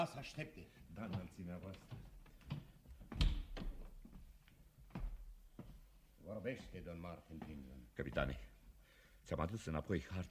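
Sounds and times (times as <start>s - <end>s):
speech: 0.0s - 2.0s, 6.3s - 8.5s, 9.3s - 10.2s
cabin door closing: 2.5s - 4.0s.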